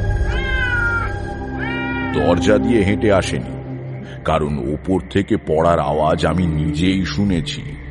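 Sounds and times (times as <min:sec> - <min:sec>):
fat cat meowing in a courtyard: 0:00.2 - 0:02.5
speech: 0:02.2 - 0:03.6, 0:04.3 - 0:07.8.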